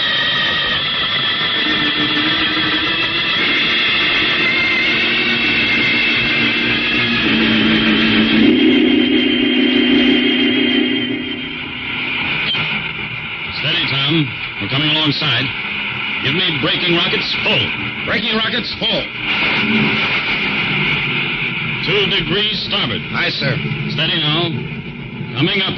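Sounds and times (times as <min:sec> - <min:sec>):
jet boat engine roaring as it blasts off: 0:00.0 - 0:25.7
speech: 0:16.3 - 0:19.9, 0:21.9 - 0:24.7, 0:25.4 - 0:25.7.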